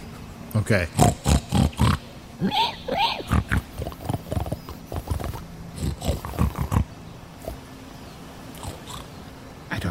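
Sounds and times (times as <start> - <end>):
speech: 0.6 - 1.3, 2.4 - 3.4
people imitating pig snuffling and grunting: 0.9 - 6.9.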